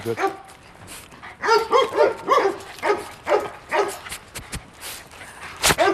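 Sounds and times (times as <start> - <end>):
speech: 0.0 - 0.5
small dog giving high-pitched yappy barks: 1.4 - 4.0, 5.6 - 5.9.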